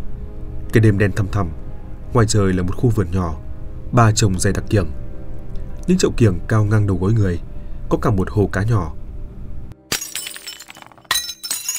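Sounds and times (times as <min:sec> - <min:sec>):
speech: 0:00.7 - 0:05.0, 0:05.9 - 0:09.0
glass breaking in a kitchen: 0:09.9 - 0:11.7
tinkling glass shards: 0:09.9 - 0:11.7.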